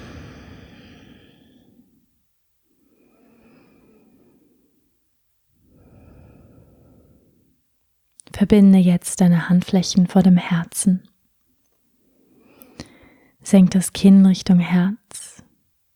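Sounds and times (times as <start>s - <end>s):
deep slow breathing in and out during a guided relaxation: 0.0s - 7.8s, 11.9s - 13.4s
speech: 8.4s - 11.1s, 13.5s - 15.3s.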